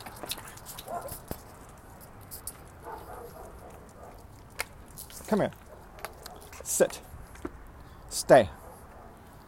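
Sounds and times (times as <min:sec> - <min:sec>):
outdoor city noise in Central Los Angeles: 0:00.0 - 0:09.4
big dog barking: 0:00.9 - 0:01.2, 0:02.8 - 0:04.3, 0:05.6 - 0:06.6
speech: 0:05.3 - 0:05.6, 0:06.7 - 0:07.1, 0:08.2 - 0:08.6.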